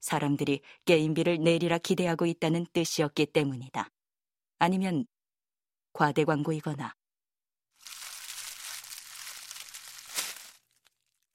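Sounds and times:
speech: 0.0 - 4.0, 4.6 - 5.1, 6.0 - 7.0
plastic packaging being crinkled and unwrapped: 7.8 - 11.3.

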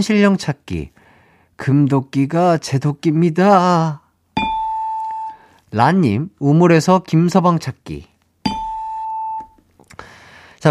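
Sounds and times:
speech: 0.0 - 1.0, 1.6 - 4.0, 5.7 - 8.1
bright bell-like correct-answer chime: 4.4 - 5.4, 8.5 - 9.5.

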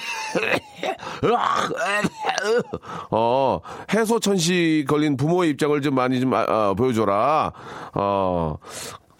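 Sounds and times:
person fake coughing in front of a door: 0.0 - 2.8
speech: 0.4 - 9.1.

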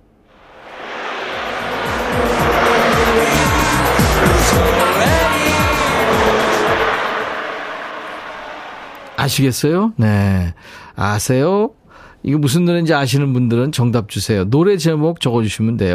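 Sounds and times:
car engine and road noise passing: 0.3 - 9.4
speech: 9.3 - 15.9.

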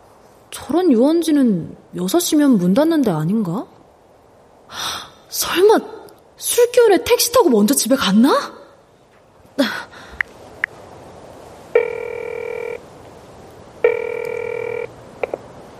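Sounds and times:
speech: 0.7 - 3.8, 4.7 - 8.6, 9.6 - 9.9
telephone ringing with electronic trill: 11.8 - 12.8, 13.8 - 15.4.

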